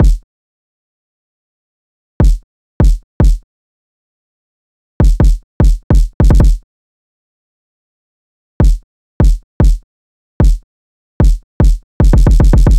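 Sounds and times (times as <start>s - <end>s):
drill kick drum: 0.0s - 0.2s, 2.2s - 3.4s, 5.0s - 6.6s, 8.6s - 9.8s, 10.4s - 10.6s, 11.2s - 12.7s.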